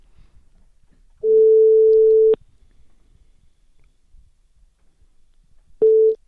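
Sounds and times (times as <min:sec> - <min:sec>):
telephone ringback tone while placing a call: 0:01.2 - 0:02.4.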